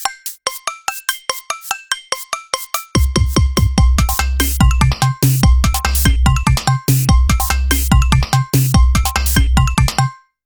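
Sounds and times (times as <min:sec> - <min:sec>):
ringtone on a Nokia 208 phone: 0:00.3 - 0:03.5, 0:04.1 - 0:10.2.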